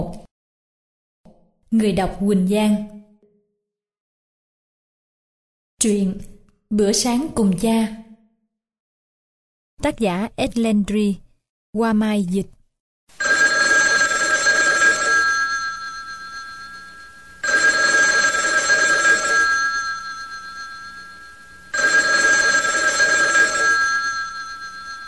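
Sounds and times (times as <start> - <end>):
speech: 1.7 - 3.0, 5.8 - 8.0, 9.8 - 13.3
telephone bell ringing: 13.2 - 25.0.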